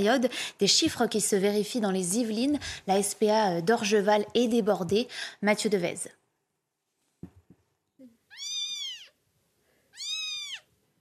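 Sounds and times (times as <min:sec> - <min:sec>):
speech: 0:00.0 - 0:06.2
kitten meowing: 0:08.3 - 0:09.2, 0:09.9 - 0:10.7.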